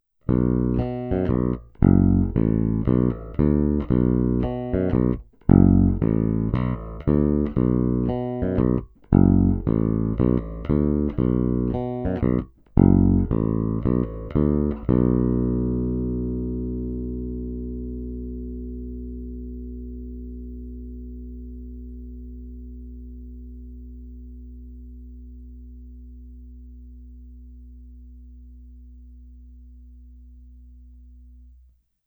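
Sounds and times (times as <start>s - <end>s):
Ernie Ball Music Man BIG-AL electric guitar through bridge and neck pickups: 0.3s - 24.8s.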